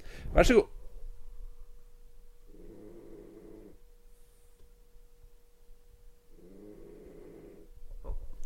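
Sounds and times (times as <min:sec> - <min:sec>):
quiet hum: 0:00.0 - 0:08.4
speech: 0:00.4 - 0:00.8
sleeping pet snoring: 0:02.5 - 0:03.8, 0:06.3 - 0:07.8.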